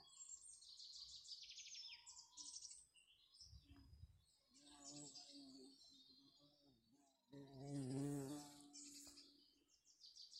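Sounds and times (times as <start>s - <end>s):
bee buzzing close to the microphone: 7.6s - 8.8s.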